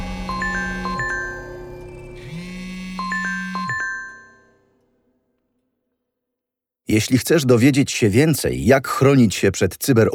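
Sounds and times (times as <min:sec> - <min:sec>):
phone ringing with buzzing electronic tone: 0:00.0 - 0:04.6
quick melodic chime of bright notes: 0:00.0 - 0:04.8
speech: 0:06.9 - 0:10.1.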